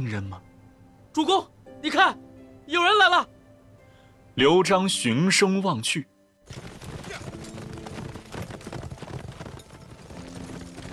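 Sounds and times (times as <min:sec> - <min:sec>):
speech: 0:00.1 - 0:00.5, 0:01.2 - 0:03.3, 0:04.4 - 0:06.7
troop of horses galloping toward a city: 0:06.4 - 0:10.9.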